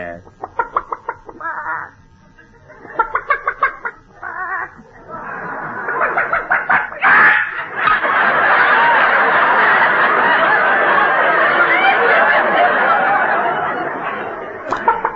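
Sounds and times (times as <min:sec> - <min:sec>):
hen clucking on a nest: 0:00.0 - 0:02.0, 0:02.7 - 0:04.9, 0:05.8 - 0:08.0
laughter: 0:02.3 - 0:15.1.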